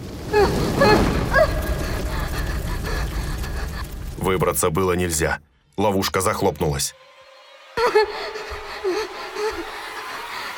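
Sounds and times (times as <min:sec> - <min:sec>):
flamethrower fire blast: 0:00.0 - 0:04.6
laughter: 0:01.8 - 0:04.2, 0:07.8 - 0:10.5
speech: 0:04.3 - 0:07.1, 0:07.8 - 0:09.7.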